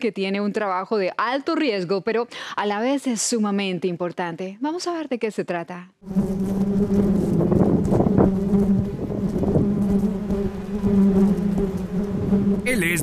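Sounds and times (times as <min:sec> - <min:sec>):
speech: 0:00.0 - 0:07.2
swarm of bees buzzing in Tijuana Baja California: 0:06.0 - 0:13.0.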